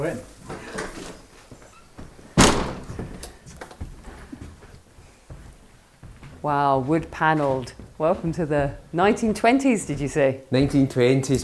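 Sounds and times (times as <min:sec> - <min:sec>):
speech: 0:00.0 - 0:00.6, 0:06.4 - 0:11.4
footstep-like shuffles: 0:00.1 - 0:11.4
heavy oak door with original handle closing: 0:02.3 - 0:03.3.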